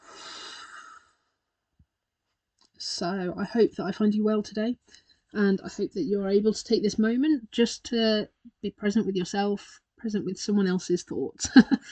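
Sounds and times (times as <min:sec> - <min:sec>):
slow deep breath in and out: 0:00.0 - 0:01.3
speech: 0:02.9 - 0:11.8.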